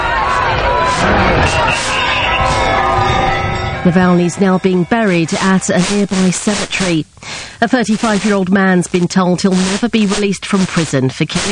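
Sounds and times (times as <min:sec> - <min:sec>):
large crowd chanting a name outside a church: 0:00.0 - 0:06.9
continuous roar of crowd babble: 0:00.0 - 0:11.4
speech: 0:03.8 - 0:11.4.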